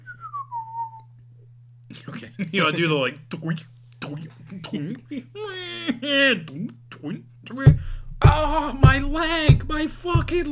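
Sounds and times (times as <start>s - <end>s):
person cleaning up whistling a single downward gliding note: 0.0s - 1.1s
steady low hum in a dank place with leaky pipes: 0.0s - 5.4s, 6.0s - 10.5s
laughter: 1.9s - 3.1s, 4.3s - 6.5s
speech: 1.9s - 10.5s.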